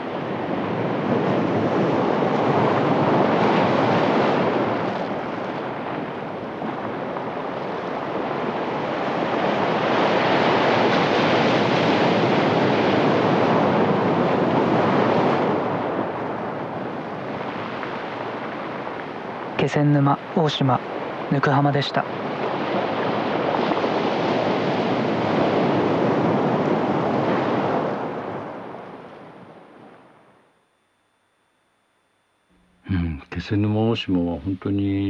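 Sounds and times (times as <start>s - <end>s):
gentle ocean waves washing onto a beach: 0.0s - 30.7s
speech: 19.7s - 22.8s, 33.5s - 35.0s.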